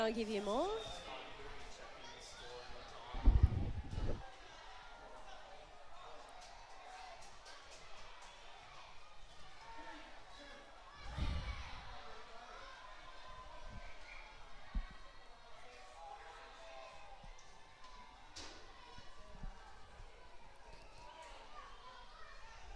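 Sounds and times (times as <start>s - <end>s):
speech: 0.0s - 1.1s
large stadium crowd cheering and murmuring at a football match: 0.0s - 22.7s.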